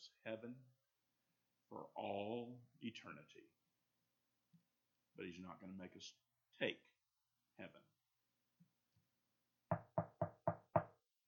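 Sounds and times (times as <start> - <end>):
speech: 0.2 - 0.8, 1.7 - 3.6, 5.2 - 6.9, 7.6 - 7.9
firm knocking on a wooden door: 9.7 - 11.0.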